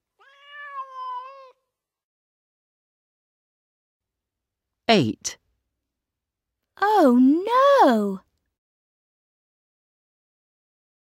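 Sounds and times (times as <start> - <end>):
cat giving a long drawn-out meow: 0.2 - 1.7
speech: 4.9 - 5.4, 6.8 - 8.2.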